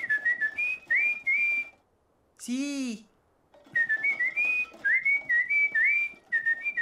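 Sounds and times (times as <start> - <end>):
person whistling a bright lilting melody: 0.0 - 1.8, 3.7 - 6.7
speech: 2.4 - 3.1.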